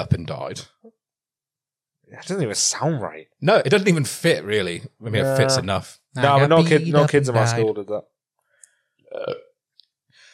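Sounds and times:
laughter: 0:00.0 - 0:00.6, 0:02.3 - 0:08.0
speech: 0:00.0 - 0:00.8, 0:02.1 - 0:08.1, 0:09.1 - 0:09.5
low rough gassy burp: 0:09.1 - 0:09.5.

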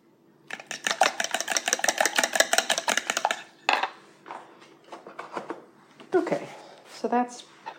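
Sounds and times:
whisk beating a milk mixture in a bowl for shortbread: 0:00.5 - 0:03.5
speech: 0:06.2 - 0:07.5.

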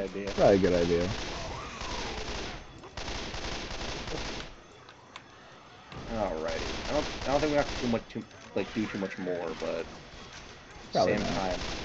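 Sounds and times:
speech: 0:00.1 - 0:01.4, 0:06.1 - 0:10.1, 0:10.9 - 0:11.8
rapid video game gunfire: 0:00.2 - 0:04.6, 0:06.6 - 0:08.1, 0:11.4 - 0:11.8
faint click: 0:04.8 - 0:05.3.

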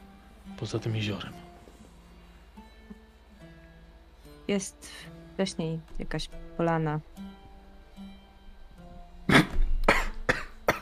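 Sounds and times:
speech: 0:00.6 - 0:01.5, 0:04.5 - 0:07.3
man coughing harshly after choking on something: 0:09.3 - 0:10.8.

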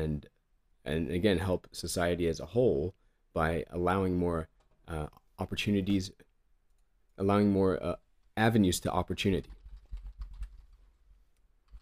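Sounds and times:
speech: 0:00.0 - 0:06.3, 0:07.2 - 0:09.6
typing on a computer keyboard: 0:09.4 - 0:11.0.

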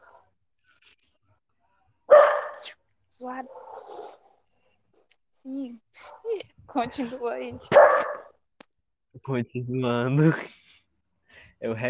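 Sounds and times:
dog barking at the neighbor: 0:02.1 - 0:02.8, 0:03.4 - 0:04.3, 0:07.7 - 0:08.4
speech: 0:03.2 - 0:03.7, 0:05.4 - 0:08.0, 0:09.2 - 0:10.6, 0:11.6 - 0:11.8.

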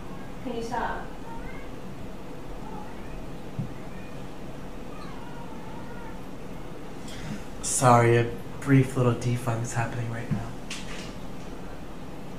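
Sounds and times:
steady hiss: 0:00.0 - 0:12.3
speech: 0:00.4 - 0:01.2, 0:07.8 - 0:10.6
cats meowing and yowling: 0:01.2 - 0:01.9, 0:02.5 - 0:06.9.

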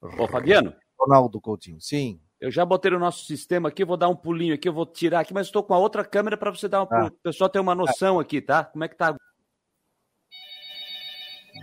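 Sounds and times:
speech: 0:00.0 - 0:09.3
telephone ringing with electronic trill: 0:10.3 - 0:11.6.

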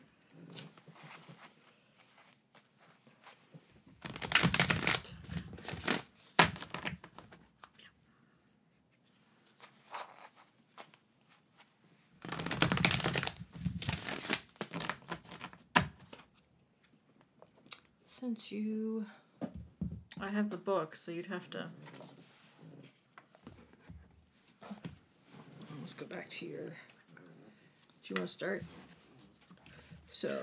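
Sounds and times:
Lenormand deck of cards being shuffled: 0:04.0 - 0:07.8, 0:12.2 - 0:16.3
speech: 0:18.2 - 0:19.2, 0:20.2 - 0:22.0, 0:26.2 - 0:26.9, 0:28.1 - 0:28.8, 0:30.2 - 0:30.4.

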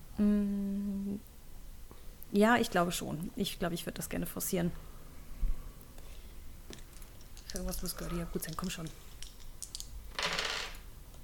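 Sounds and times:
speech: 0:00.2 - 0:00.6, 0:02.3 - 0:04.9, 0:07.6 - 0:09.1
dice tumbling across a hard tabletop: 0:06.7 - 0:10.8.

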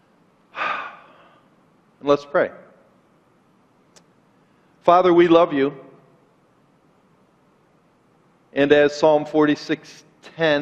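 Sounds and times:
deep breath: 0:00.5 - 0:01.6
speech: 0:02.0 - 0:02.6, 0:04.8 - 0:05.8, 0:08.6 - 0:10.6.

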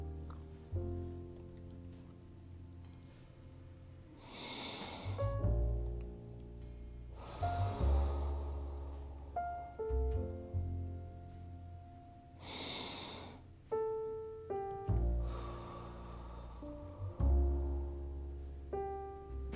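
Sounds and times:
soft sustained instrumental music: 0:00.0 - 0:19.5
deep breaths in through nostrils and out: 0:04.2 - 0:05.4, 0:07.1 - 0:09.4, 0:12.4 - 0:13.5, 0:15.2 - 0:17.4.

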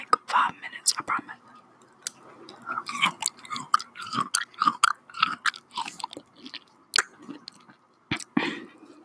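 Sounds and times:
fruit being chewed during an ASMR eating session: 0:01.6 - 0:08.4.

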